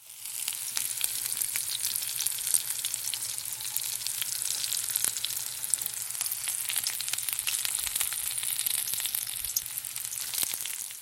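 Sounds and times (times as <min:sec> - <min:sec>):
butter sizzling in a hot pan: 0:00.0 - 0:11.0.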